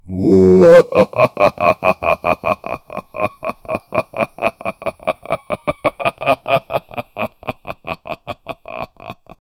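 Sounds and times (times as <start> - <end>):
long loud male monster voice: 0.0 - 1.8
laughter: 0.6 - 9.4.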